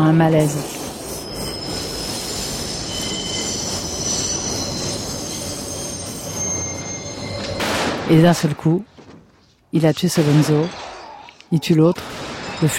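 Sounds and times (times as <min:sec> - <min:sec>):
subway train rumbling: 0:00.0 - 0:07.8
speech: 0:00.1 - 0:00.8, 0:08.1 - 0:08.9, 0:09.7 - 0:10.8, 0:11.5 - 0:12.7.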